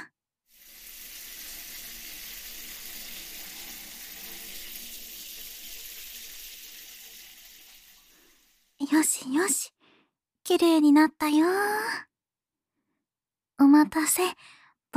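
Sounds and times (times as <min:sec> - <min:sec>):
hot water pouring over a baby in a bath: 0:00.5 - 0:08.8
speech: 0:08.8 - 0:09.8, 0:10.5 - 0:12.1, 0:13.6 - 0:14.9.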